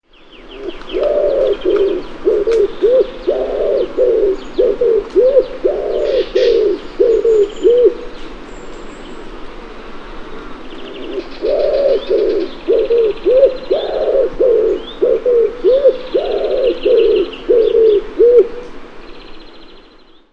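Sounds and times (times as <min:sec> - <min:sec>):
paloma torcaz wood pigeon: 0:00.5 - 0:08.4, 0:10.4 - 0:18.7.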